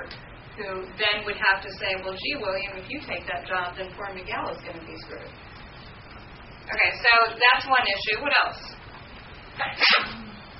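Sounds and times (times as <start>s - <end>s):
low steady hum: 0.0s - 10.5s
speech: 0.6s - 5.5s, 6.7s - 8.8s, 9.6s - 10.2s
person sneezing: 9.6s - 10.5s.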